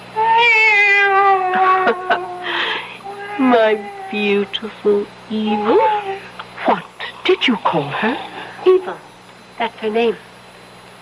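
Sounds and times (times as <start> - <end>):
female cat meowing: 0.2 - 4.6, 5.4 - 6.3
speech: 3.4 - 6.0, 7.4 - 10.3.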